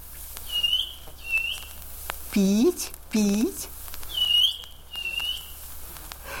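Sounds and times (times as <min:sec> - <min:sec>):
small grey bird peeping behind a dense spruce thicket before rain: 0:00.0 - 0:05.7
quiet outdoor hiss: 0:00.0 - 0:06.3
speech: 0:02.3 - 0:03.8.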